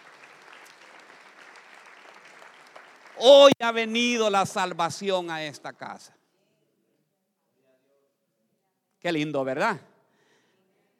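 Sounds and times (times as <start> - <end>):
audience applauding: 0.0 - 3.6
speech: 3.2 - 6.2, 9.0 - 9.9.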